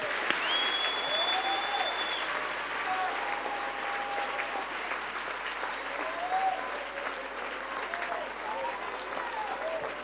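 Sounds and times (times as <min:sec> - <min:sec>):
audience clapping hands in dense applause: 0:00.0 - 0:10.0
faint whistles: 0:00.4 - 0:02.3.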